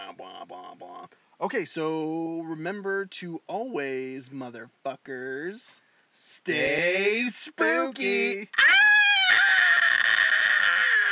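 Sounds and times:
speech: 0.1 - 9.0
group of people screaming together: 8.5 - 11.0.

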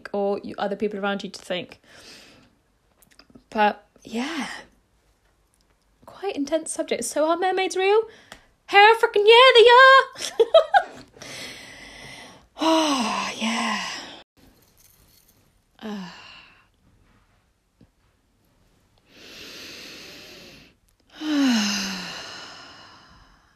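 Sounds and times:
speech: 0.1 - 2.2, 3.5 - 4.7, 6.1 - 11.5, 12.6 - 14.0, 15.8 - 16.2
deep slow breathing with sighing exhales: 11.2 - 14.2, 19.0 - 23.5.

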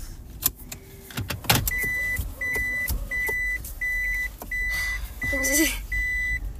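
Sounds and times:
clicks and thumps from inside the car cabin: 0.2 - 5.6
steady electronic beep in a car making a three-point turn: 1.7 - 6.5.

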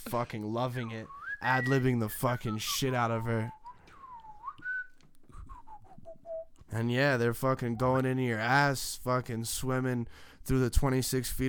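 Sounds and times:
speech: 0.0 - 3.6, 6.7 - 11.4
person whistling a tune: 0.8 - 6.6.

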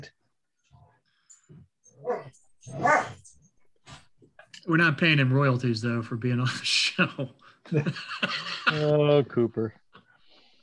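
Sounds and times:
dog barking to be let in: 2.0 - 3.2
speech: 2.0 - 3.2, 4.6 - 9.8
laughter: 6.5 - 9.4.

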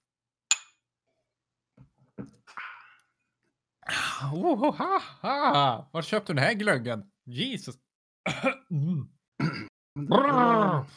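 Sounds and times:
glasses clinking in a toast: 0.5 - 0.7
soft glass handling sounds: 0.5 - 0.7
speech: 4.2 - 10.9.

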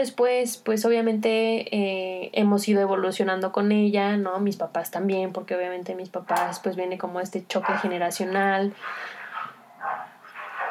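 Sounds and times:
speech: 0.0 - 9.2
dogs barking: 8.8 - 10.6.

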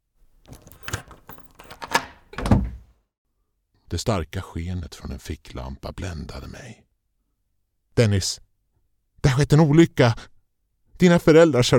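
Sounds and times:
soft clicks and knocks of a door lock mechanism being unlocked: 0.5 - 2.8
speech: 3.9 - 6.8, 8.0 - 8.4, 9.2 - 10.3, 11.0 - 11.7.

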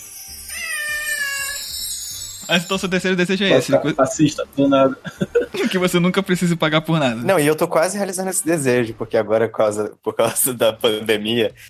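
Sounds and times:
cat meowing: 0.4 - 2.0
speech: 2.5 - 11.6
laughter: 4.8 - 6.1.

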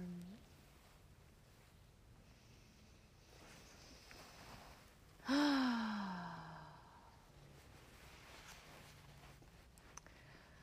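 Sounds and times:
deep breath during a guided relaxation session: 2.2 - 7.2.

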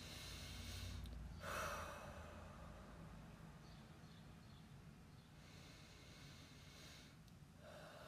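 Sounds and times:
deep breath drawn in and let out: 0.0 - 3.1, 5.3 - 8.0
steady airy hiss: 0.0 - 4.0, 4.6 - 8.0.

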